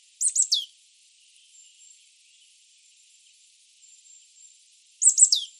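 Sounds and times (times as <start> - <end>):
Marsh tit Poecile palustris calling: 0.2 - 0.7, 5.0 - 5.5.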